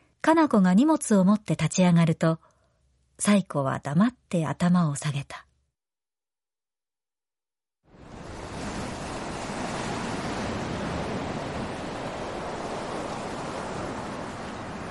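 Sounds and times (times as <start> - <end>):
speech: 0.3 - 2.5, 3.2 - 5.4
ocean waves rolling onto a white sandy beach: 7.9 - 14.8.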